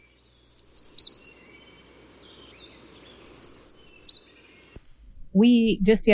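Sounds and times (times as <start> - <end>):
American Redstart singing: 0.0 - 4.8
speech: 5.4 - 6.1.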